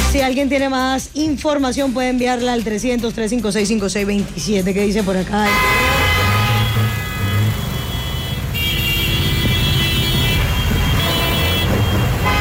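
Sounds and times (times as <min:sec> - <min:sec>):
dense road traffic jammed after a motorcycle accident: 0:00.0 - 0:12.3
speech: 0:00.2 - 0:06.3
car horns blaring in traffic jam: 0:05.4 - 0:12.3.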